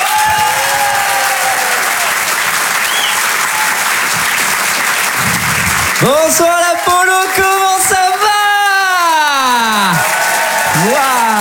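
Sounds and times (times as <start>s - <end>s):
audience applauding and cheering at a stand-up comedy show: 0.0s - 11.4s
speech: 6.0s - 7.5s.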